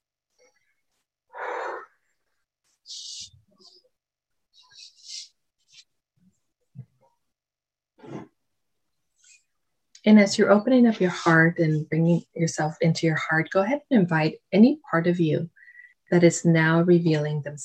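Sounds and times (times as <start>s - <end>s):
deep breath during a guided meditation: 1.3s - 2.0s, 15.6s - 16.0s
speech: 10.0s - 17.6s.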